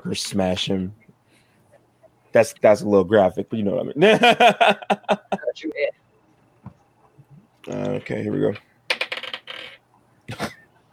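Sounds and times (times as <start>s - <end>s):
speech: 0.0s - 1.0s, 2.3s - 6.0s, 7.6s - 8.7s
dice tumbling across a hard tabletop: 8.5s - 9.8s
dice scraping on a hard tabletop: 8.9s - 9.8s.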